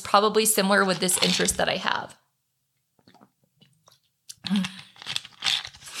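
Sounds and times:
speech: 0:00.1 - 0:02.2, 0:04.5 - 0:04.8
person sipping and swallowing water: 0:03.0 - 0:05.0.

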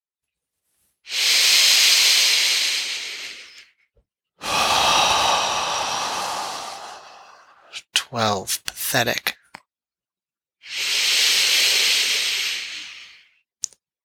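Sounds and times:
slow breathy exhales during a breathing exercise: 0:01.1 - 0:03.8, 0:04.4 - 0:07.7, 0:10.6 - 0:13.4
speech: 0:08.1 - 0:09.3.

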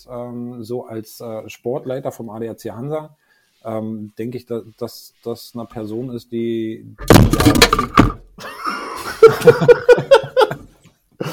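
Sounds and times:
speech: 0:00.0 - 0:08.6, 0:09.2 - 0:10.6
microphone toppling over with heavy thumps and clatter: 0:07.0 - 0:08.3
person laughing in rhythmic bursts: 0:08.4 - 0:11.3.

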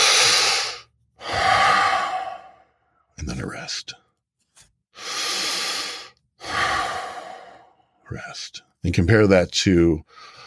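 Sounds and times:
slow deep airy breathing as in deep sleep: 0:00.0 - 0:03.1, 0:05.0 - 0:08.1, 0:10.1 - 0:10.4
speech: 0:03.7 - 0:04.0, 0:08.1 - 0:10.4.

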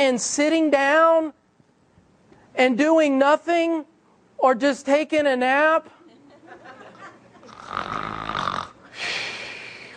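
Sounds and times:
speech: 0:00.0 - 0:01.4, 0:02.6 - 0:06.0
laughter: 0:06.0 - 0:07.7
voice imitating snoring: 0:07.5 - 0:08.9.

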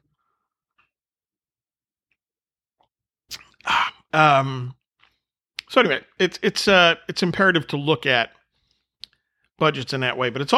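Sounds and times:
wet mouth clicks and swallows: 0:02.8 - 0:03.7
sipping a drink from a cup: 0:03.3 - 0:04.1
speech: 0:04.1 - 0:04.8, 0:05.7 - 0:08.4, 0:09.6 - 0:10.5.

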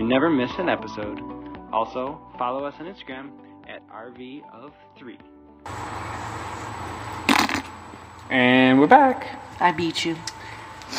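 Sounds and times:
speech: 0:00.1 - 0:06.0, 0:08.3 - 0:10.9
steady hiss: 0:05.7 - 0:10.9
blown raspberry mouth farting noise: 0:07.2 - 0:07.8.

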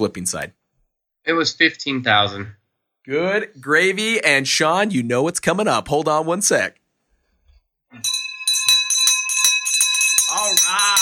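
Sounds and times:
speech: 0:00.0 - 0:00.6, 0:01.2 - 0:06.8, 0:07.9 - 0:08.1
victory bell struck rapidly: 0:08.0 - 0:11.0.

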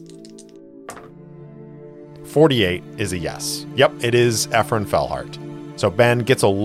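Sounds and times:
music drone: 0:00.0 - 0:06.6
dice rolling on a table: 0:00.9 - 0:01.1
speech: 0:02.3 - 0:06.6.

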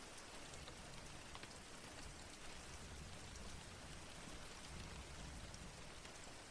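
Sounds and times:
steady rain pattering onto a hard surface: 0:00.0 - 0:06.5.

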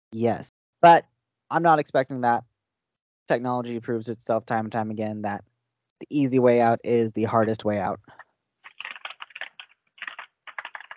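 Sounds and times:
speech: 0:00.1 - 0:02.5, 0:03.3 - 0:08.2
typing on a computer keyboard: 0:08.7 - 0:10.9.

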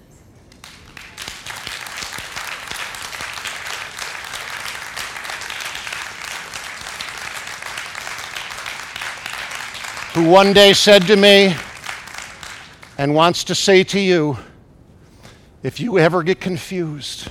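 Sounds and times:
audience applause: 0:00.5 - 0:13.2
speech: 0:10.2 - 0:11.6, 0:13.0 - 0:14.5, 0:15.6 - 0:17.2.

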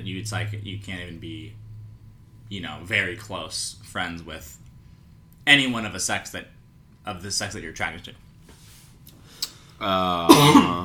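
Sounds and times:
speech: 0:00.1 - 0:01.6, 0:02.5 - 0:04.7, 0:05.5 - 0:08.2, 0:09.8 - 0:10.8
person coughing: 0:10.3 - 0:10.8.

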